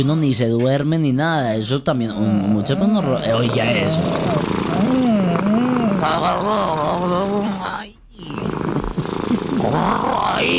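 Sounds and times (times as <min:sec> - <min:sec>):
speech: 0:00.0 - 0:08.6
cat purring: 0:02.1 - 0:10.5.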